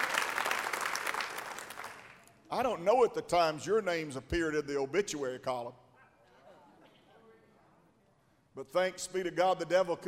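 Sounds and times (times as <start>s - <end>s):
audience applauding: 0.0s - 2.3s
speech: 2.5s - 5.8s, 8.6s - 10.0s.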